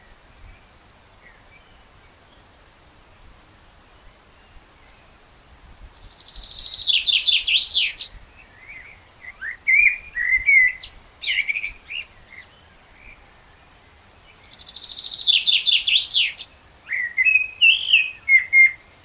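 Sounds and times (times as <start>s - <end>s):
common blackbird (Turdus merula) singing twitters and fluted whistles: 6.1s - 13.2s, 14.3s - 19.0s.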